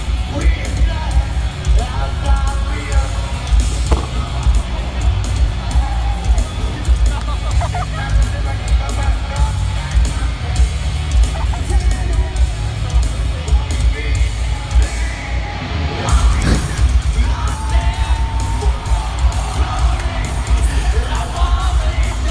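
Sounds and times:
dense live-concert crowd roaring and yelling: 0:00.0 - 0:22.2
laughter: 0:00.2 - 0:14.6, 0:16.0 - 0:22.2
heavy thud: 0:03.8 - 0:06.4, 0:16.2 - 0:22.1
audience shouts and whoops: 0:03.9 - 0:08.9, 0:16.4 - 0:22.2.

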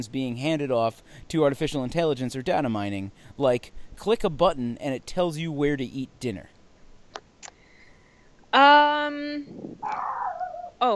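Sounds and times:
speech: 0:00.0 - 0:06.5, 0:08.5 - 0:10.2, 0:10.8 - 0:10.9
small dog yipping: 0:09.6 - 0:10.8.

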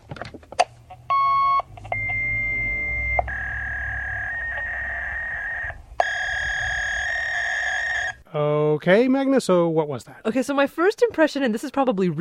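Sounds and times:
fax machine dial beeps: 0:01.1 - 0:07.3
fax machine steady electronic tones: 0:01.1 - 0:08.2
fax machine transmitting: 0:01.1 - 0:08.2
speech: 0:08.4 - 0:12.1.

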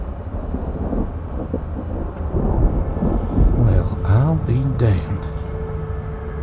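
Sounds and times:
deep rolling thunder from a sudden rainstorm: 0:00.0 - 0:05.8
faint hiss of rain: 0:00.0 - 0:06.4
speech: 0:04.6 - 0:05.3.

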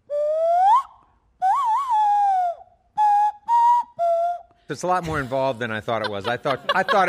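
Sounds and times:
nose whistle blown through the nose playing a breathy tune: 0:00.0 - 0:04.6
speech: 0:04.7 - 0:07.0
laughter: 0:05.0 - 0:07.0.

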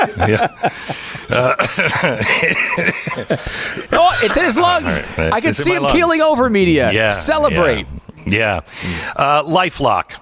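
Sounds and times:
short throaty chuckle-like sounds: 0:00.0 - 0:08.7
speech: 0:00.0 - 0:10.2
man coughing: 0:01.3 - 0:05.6.

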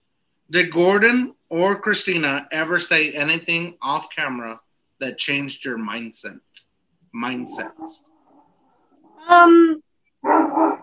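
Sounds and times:
speech: 0:00.5 - 0:08.1, 0:09.2 - 0:10.8
dog barking: 0:07.4 - 0:08.0, 0:10.2 - 0:10.8.

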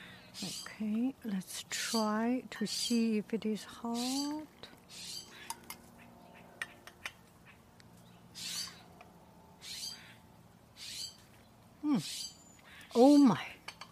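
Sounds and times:
speech: 0:00.4 - 0:05.0, 0:11.9 - 0:12.2, 0:13.0 - 0:13.5
bird calling outdoors in harsh scratchy bursts: 0:04.0 - 0:07.6, 0:08.3 - 0:08.9, 0:09.6 - 0:10.2, 0:10.8 - 0:11.3, 0:11.9 - 0:13.4.

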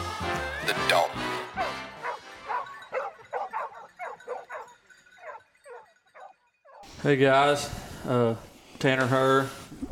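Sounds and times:
decoy dogs barking and yipping excitedly: 0:01.3 - 0:06.9
speech: 0:07.0 - 0:09.7.

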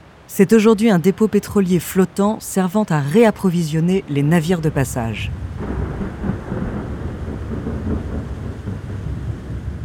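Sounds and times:
speech: 0:00.3 - 0:05.8
heavy wind in a violent storm at sea off Spain: 0:03.9 - 0:09.8.

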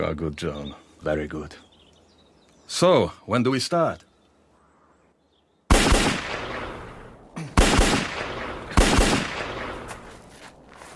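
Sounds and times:
speech: 0:00.0 - 0:01.7, 0:02.7 - 0:04.1
handgun shots at firing practice: 0:07.6 - 0:09.9.

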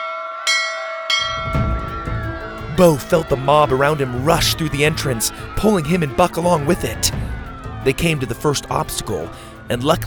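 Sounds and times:
galley bell clanging: 0:00.0 - 0:05.0
low rumbling noise: 0:01.2 - 0:10.0
speech: 0:02.8 - 0:10.0.

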